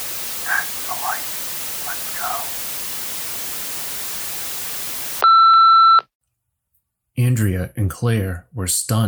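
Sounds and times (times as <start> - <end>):
faint garbled voice murmuring: 0.0 - 3.2
steady hissing static: 0.0 - 5.2
speech: 7.2 - 9.0.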